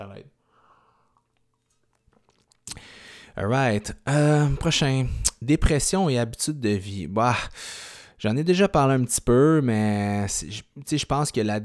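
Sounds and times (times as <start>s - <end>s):
speech: 0.0s - 0.4s, 3.4s - 11.6s
person sipping coffee: 0.9s - 3.3s, 5.1s - 5.4s
lip and mouth clicks: 1.2s - 2.9s, 5.0s - 5.4s
loud airy slurp or exhale: 2.1s - 3.2s.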